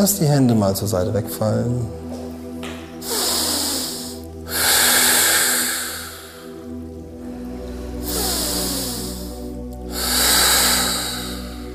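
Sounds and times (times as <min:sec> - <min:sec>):
speech: 0:00.0 - 0:02.1
soft sustained musical drone: 0:00.0 - 0:11.7
slow deep conscious breathing in and out: 0:03.0 - 0:11.7.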